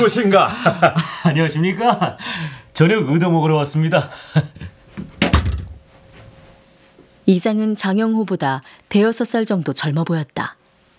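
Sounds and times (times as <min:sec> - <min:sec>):
laughter: 0:00.0 - 0:02.5
speech: 0:00.0 - 0:04.8, 0:07.3 - 0:10.6
faint knock: 0:05.0 - 0:05.9
house front door opening clunk: 0:05.0 - 0:05.9.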